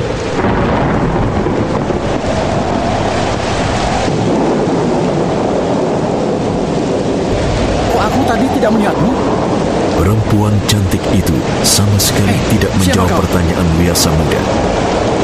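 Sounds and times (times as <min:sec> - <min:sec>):
heavy rain lashed by strong wind: 0:00.0 - 0:15.2
strong gusty wind: 0:00.0 - 0:15.2
speech: 0:10.0 - 0:15.2.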